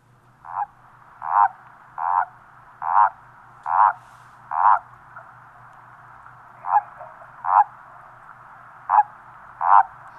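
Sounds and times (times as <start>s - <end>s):
faint low hum: 0.0s - 10.1s
common toad contact calls: 0.4s - 5.4s, 6.5s - 8.2s, 8.8s - 10.1s.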